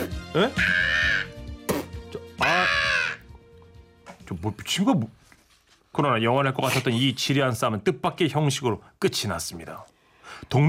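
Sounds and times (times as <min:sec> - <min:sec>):
brief questioning vocal sound: 0:00.0 - 0:03.3
speech: 0:00.4 - 0:00.9, 0:04.3 - 0:05.2, 0:06.0 - 0:10.6
crow cawing: 0:00.6 - 0:01.4, 0:02.4 - 0:03.3.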